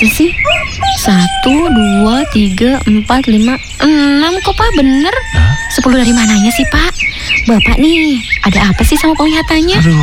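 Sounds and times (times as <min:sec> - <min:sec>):
speech: 0:00.0 - 0:10.0
rooster crowing from a household flock of chickens: 0:00.4 - 0:02.5, 0:04.4 - 0:06.9.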